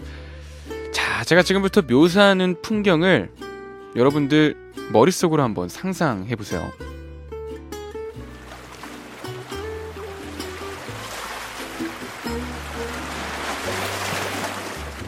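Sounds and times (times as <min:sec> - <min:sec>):
speech: 0:01.2 - 0:06.9
soft ocean waves: 0:08.3 - 0:15.0.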